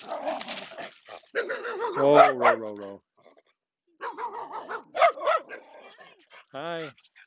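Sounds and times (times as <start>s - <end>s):
dog barking and yelping: 0.0s - 2.7s, 4.0s - 6.1s
speech: 2.0s - 3.1s.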